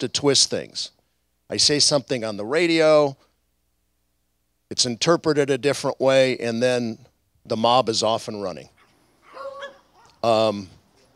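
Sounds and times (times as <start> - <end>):
speech: 0.0 - 3.3, 4.7 - 8.8, 10.2 - 10.8
dog whining: 8.7 - 10.2
dog barking: 8.8 - 10.3.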